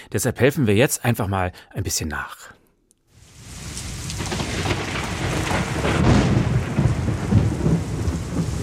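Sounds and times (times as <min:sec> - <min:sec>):
speech: 0:00.1 - 0:02.6
heavy rain pouring down in a summer thunderstorm: 0:03.2 - 0:08.6
deep rumbling thunder in a summer thunderstorm: 0:03.4 - 0:08.6.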